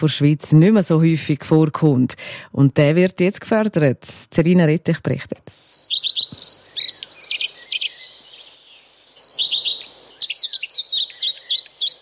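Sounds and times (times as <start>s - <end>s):
speech: 0.0s - 6.4s
common redstart singing: 5.5s - 12.0s.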